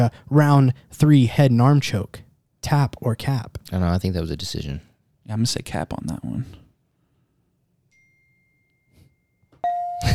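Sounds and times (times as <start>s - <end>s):
speech: 0.0s - 6.6s
phone notification ding: 9.6s - 10.1s.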